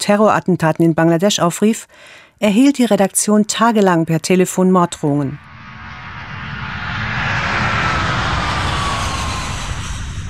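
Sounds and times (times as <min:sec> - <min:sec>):
speech: 0:00.0 - 0:05.5
airplane engines roaring inside the cabin during a flight: 0:05.4 - 0:10.2.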